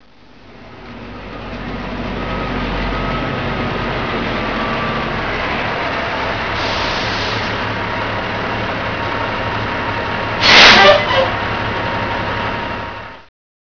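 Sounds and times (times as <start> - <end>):
truck: 0.0 - 13.3.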